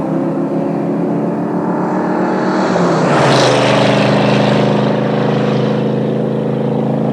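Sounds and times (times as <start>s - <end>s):
Mustang passing by at 75 mph: 0.1s - 7.0s.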